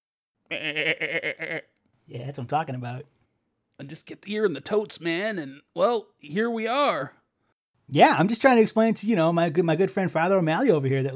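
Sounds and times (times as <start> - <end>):
single goat bleating: 0.5 - 1.7
speech: 0.5 - 3.2, 3.8 - 7.2, 7.9 - 11.1.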